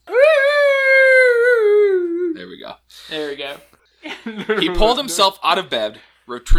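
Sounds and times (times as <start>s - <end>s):
dog howling: 0.0s - 2.4s
speech: 3.4s - 6.5s
laughter: 4.0s - 5.1s.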